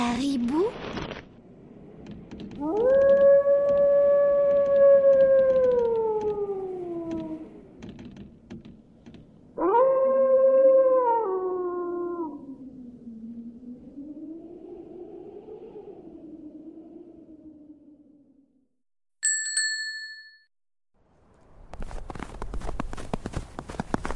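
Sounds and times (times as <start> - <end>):
faint clicking and rustling: 2.0 - 6.4, 7.0 - 9.4
wolf howling: 2.6 - 7.8, 9.6 - 18.3.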